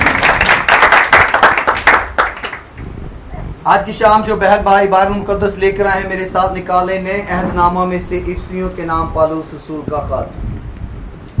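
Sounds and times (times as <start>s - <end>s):
large audience at a Christian worship service applauding loudly: 0.0s - 2.8s
sharper individual claps: 0.0s - 2.9s
speech: 3.7s - 10.6s.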